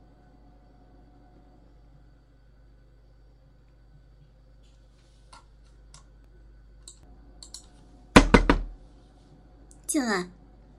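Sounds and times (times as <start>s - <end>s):
hard knocking on a door: 8.2s - 8.8s
speech: 9.9s - 10.4s.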